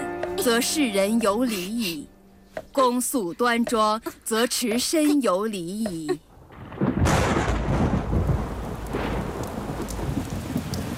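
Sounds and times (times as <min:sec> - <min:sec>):
speech: 0:00.4 - 0:06.3
deep roll of thunder: 0:06.3 - 0:10.9
steady heavy rain pouring down: 0:06.3 - 0:10.9.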